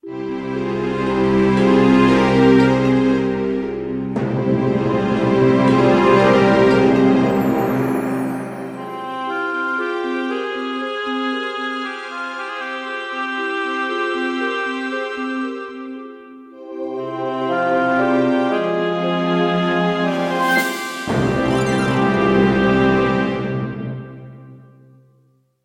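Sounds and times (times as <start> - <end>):
Egyptian mood game music: 0.0 - 24.6.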